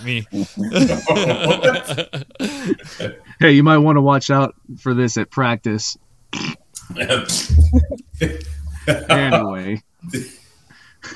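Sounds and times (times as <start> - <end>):
laughter: 0.0 - 3.2, 6.9 - 9.6
speech: 0.0 - 10.4
fart: 6.3 - 6.6.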